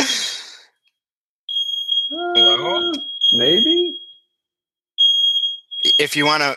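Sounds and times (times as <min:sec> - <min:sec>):
smoke detector high electronic beep: 0:01.5 - 0:04.3, 0:05.0 - 0:06.4
speech: 0:02.6 - 0:04.0, 0:06.0 - 0:06.5.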